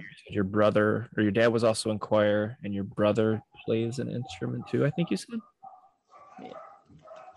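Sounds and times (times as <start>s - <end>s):
speech: 0.2s - 5.5s
dogs barking as if from another room: 4.2s - 7.3s.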